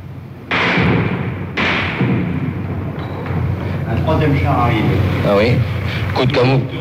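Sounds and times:
machine-gun bullets striking a wall: 0.5s - 3.5s
heavy thuds: 0.5s - 3.9s
speech: 4.0s - 6.8s.

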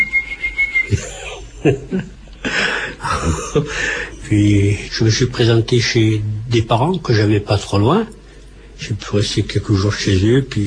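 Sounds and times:
man whistling as if calling a dog: 0.0s - 1.0s
speech: 0.9s - 2.2s, 3.2s - 8.2s, 8.8s - 10.6s
breathy chuckles and laughter: 0.9s - 3.9s.

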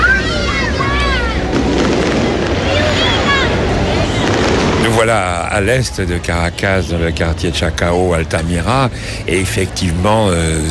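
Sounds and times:
murmur of voices: 0.0s - 10.6s
firework bangs and crackle outdoors in Chacao and Altamira, Caracas, Venezuela: 1.4s - 6.3s
speech: 5.0s - 10.6s.

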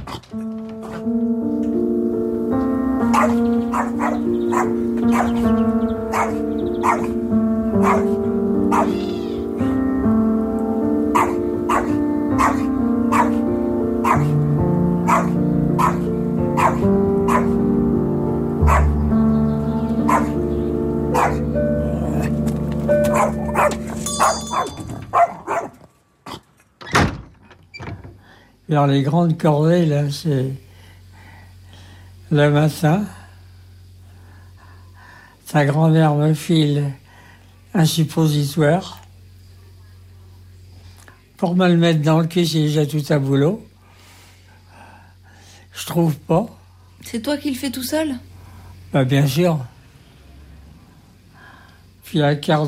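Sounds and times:
sustained tonal drone: 0.4s - 25.2s
small dog yapping loudly: 3.1s - 5.4s, 6.1s - 7.1s, 7.8s - 8.1s, 8.7s - 9.3s, 11.2s - 13.4s, 14.0s - 14.3s, 15.1s - 17.5s, 18.7s - 18.9s, 20.1s - 20.3s, 21.2s - 21.4s, 24.6s - 25.8s
speech: 3.2s - 3.6s, 28.8s - 30.6s, 32.3s - 33.2s, 35.5s - 37.0s, 37.8s - 39.0s, 41.4s - 43.7s, 45.8s - 48.3s, 48.9s - 49.7s, 52.1s - 52.6s.

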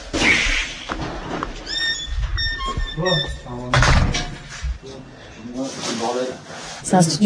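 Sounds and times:
studio apartment door hinges creaking: 0.9s - 5.0s
speech: 3.0s - 3.9s, 5.4s - 7.2s
studio apartment door thumping shut: 3.7s - 4.8s.

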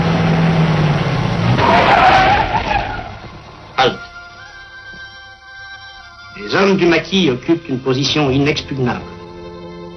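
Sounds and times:
car tires skidding with a brief squeal: 0.0s - 3.7s
car driving out of Lyon with steady engine drone: 0.0s - 4.0s
speech: 6.5s - 9.1s.

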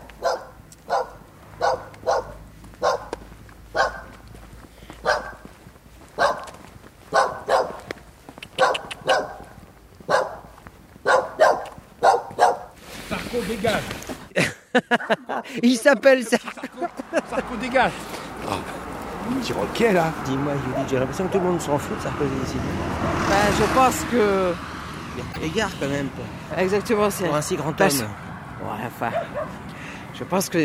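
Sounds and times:
dogs barking on a main street: 0.0s - 4.2s, 5.0s - 5.5s, 6.1s - 12.8s, 29.1s - 29.6s
faint street noise: 0.0s - 30.6s
speech: 13.5s - 14.0s, 15.0s - 16.5s, 17.4s - 18.7s, 19.3s - 24.7s, 25.4s - 28.2s, 28.9s - 29.6s, 30.2s - 30.6s
laughter: 14.3s - 18.8s.

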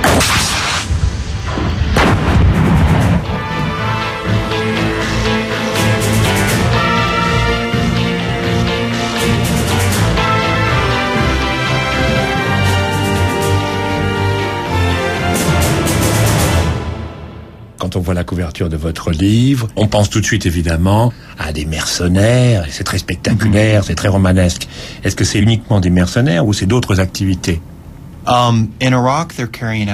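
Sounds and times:
artillery gun firing: 0.0s - 3.5s
dense steady tonal rumble: 0.5s - 18.4s
speech: 18.4s - 29.9s.

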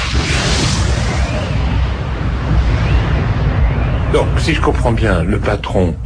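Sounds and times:
hissing debris noise: 0.0s - 3.4s
mine gas explosion roar: 0.0s - 6.0s
speech: 4.2s - 6.0s.

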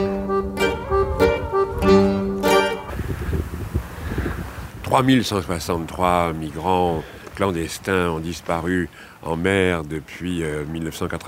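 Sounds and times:
gusty Mistral wind blowing outdoors: 0.0s - 8.5s
speech: 4.9s - 11.2s.

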